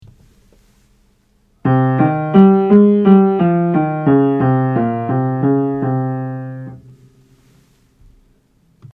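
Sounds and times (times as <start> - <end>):
modal scales for aural training exercise: 1.6 - 7.2.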